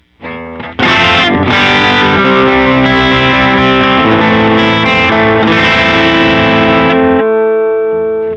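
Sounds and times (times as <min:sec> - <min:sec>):
heavy electric guitar: 0:00.0 - 0:08.3.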